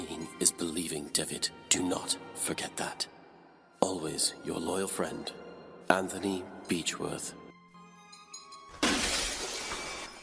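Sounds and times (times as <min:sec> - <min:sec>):
speech: 0:00.9 - 0:03.2, 0:03.8 - 0:07.4
window glass shattering: 0:08.5 - 0:10.2
falling glass shards: 0:08.7 - 0:10.2.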